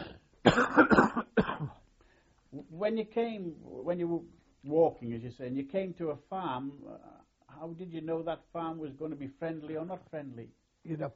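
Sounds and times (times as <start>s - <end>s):
person coughing: 0.0s - 1.8s
throat clearing: 0.0s - 1.8s
speech: 0.5s - 1.0s, 2.8s - 11.1s.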